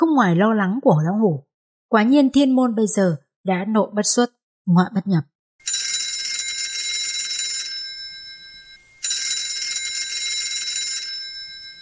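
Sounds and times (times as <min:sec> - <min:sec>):
speech: 0:00.0 - 0:05.3
mobile phone ringing with electronic trilling: 0:05.6 - 0:11.8.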